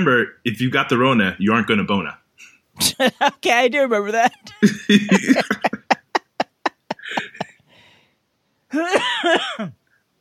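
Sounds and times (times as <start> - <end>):
speech: 0.0 - 5.8, 8.7 - 9.8
laughter: 2.8 - 3.5, 4.1 - 7.6, 8.8 - 9.4
man coughing: 4.6 - 6.0, 8.8 - 9.8.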